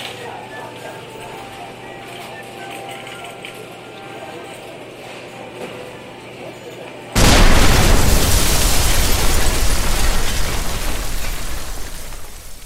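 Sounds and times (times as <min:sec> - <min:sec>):
long roaring rumble of debris: 0:07.2 - 0:12.6
loud explosion: 0:07.2 - 0:12.6.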